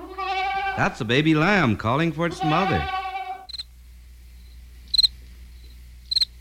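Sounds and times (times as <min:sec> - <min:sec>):
speech: 0:00.8 - 0:03.0
cricket chirping: 0:03.5 - 0:03.7, 0:04.4 - 0:06.4.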